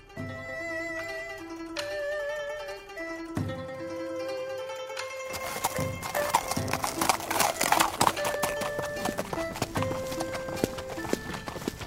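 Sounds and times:
gentle tonal music: 0:00.0 - 0:11.8
loud rapid horse hooves clip-clopping: 0:05.3 - 0:11.8.

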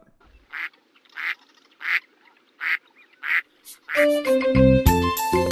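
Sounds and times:
duck quacking: 0:00.5 - 0:04.1
speech: 0:04.0 - 0:05.4.

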